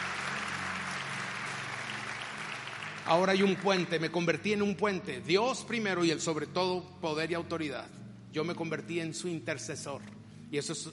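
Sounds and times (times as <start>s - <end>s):
audience applause during a sermon: 0.0s - 4.1s
speech: 3.1s - 10.9s.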